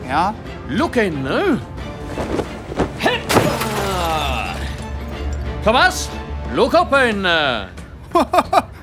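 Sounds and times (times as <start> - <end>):
speech: 0.1 - 2.4, 5.6 - 8.7
heavy thuds: 2.0 - 3.8
car window being smashed: 2.2 - 4.9
laughter: 8.1 - 8.8.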